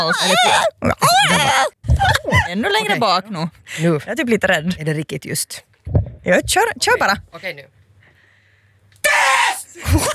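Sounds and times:
person screaming at full force: 0.0 - 2.5, 9.0 - 9.8
speech: 0.0 - 7.8, 9.0 - 10.1.

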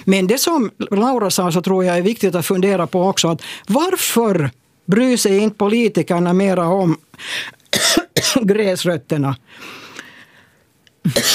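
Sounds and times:
speech: 0.0 - 9.8, 11.0 - 11.3
person coughing harshly: 7.7 - 8.4, 11.0 - 11.3.

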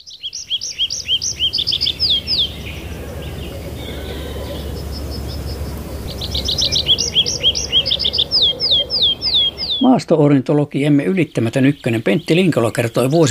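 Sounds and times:
tree pipit singing: 0.0 - 13.3
low steady rumble: 1.3 - 9.7
speech: 9.8 - 13.3.

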